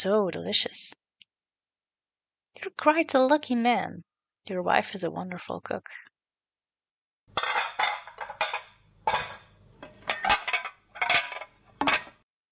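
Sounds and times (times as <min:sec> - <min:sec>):
speech: 0:00.0 - 0:01.0, 0:02.6 - 0:06.1
dishes and cutlery clattering while being washed up after a meal: 0:07.3 - 0:12.2.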